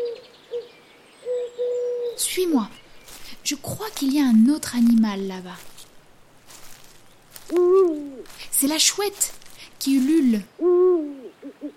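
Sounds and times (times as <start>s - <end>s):
turtle dove cooing: 0.0s - 2.3s, 7.5s - 8.3s, 10.3s - 11.7s
speech: 2.4s - 2.8s, 3.4s - 5.7s, 7.5s - 10.8s.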